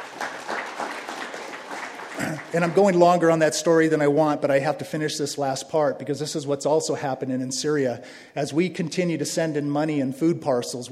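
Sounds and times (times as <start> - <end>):
audience applause: 0.0 - 3.4
speech: 2.2 - 10.8.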